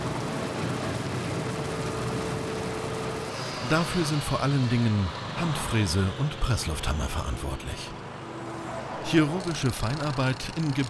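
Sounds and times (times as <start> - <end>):
trucks rushing past on a highway: 0.0 - 10.8
speech: 3.7 - 8.1, 9.1 - 10.8.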